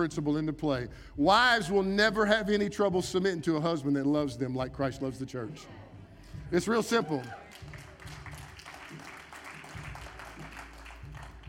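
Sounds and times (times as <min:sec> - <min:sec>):
speech: 0:00.0 - 0:05.8, 0:06.5 - 0:07.4
audience of women clapping: 0:06.9 - 0:11.4.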